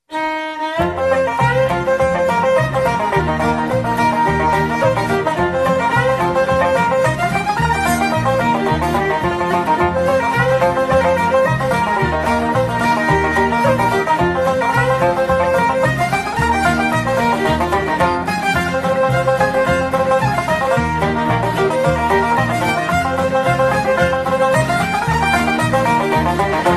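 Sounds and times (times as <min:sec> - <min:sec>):
Irish tavern music: 0:00.1 - 0:26.7.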